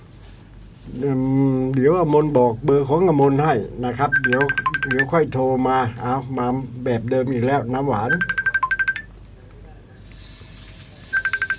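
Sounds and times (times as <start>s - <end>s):
speech: 0.9s - 8.4s
Messenger app incoming call ringtone chimes: 4.1s - 5.2s, 8.1s - 9.1s, 11.1s - 11.5s.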